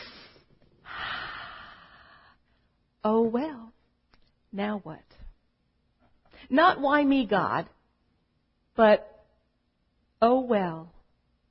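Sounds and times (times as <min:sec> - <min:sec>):
deep breath: 0:00.0 - 0:02.8
speech: 0:03.0 - 0:03.6, 0:04.5 - 0:05.2, 0:06.5 - 0:07.8, 0:08.8 - 0:09.1, 0:10.2 - 0:10.9.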